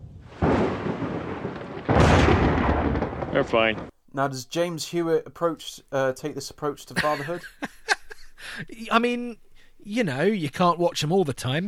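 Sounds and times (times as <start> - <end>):
thunder rumbling during a rainstorm: 0.0 - 3.9
speech: 3.4 - 7.8, 8.4 - 11.6
laughter: 7.0 - 8.7.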